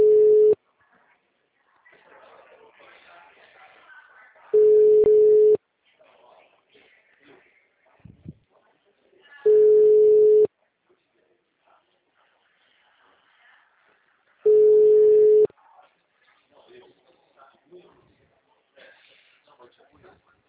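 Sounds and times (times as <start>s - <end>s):
telephone line tone beeps on a call: 0.0s - 0.6s, 4.6s - 5.6s, 9.5s - 10.5s, 14.5s - 15.5s.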